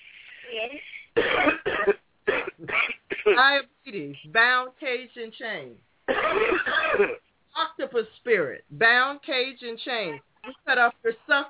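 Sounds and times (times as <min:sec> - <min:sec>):
speech: 0:00.5 - 0:02.0, 0:03.4 - 0:11.4
person coughing: 0:01.2 - 0:03.5, 0:06.1 - 0:07.2.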